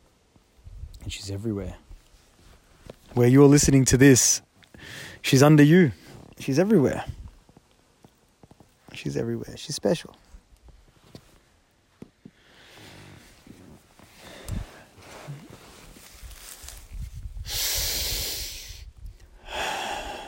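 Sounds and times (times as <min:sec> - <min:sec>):
speech: 0:01.1 - 0:01.9, 0:03.2 - 0:07.2, 0:09.0 - 0:10.2
deep slow breaths drawn in through the nose and mouth: 0:04.7 - 0:05.2, 0:14.1 - 0:15.7, 0:17.4 - 0:20.2.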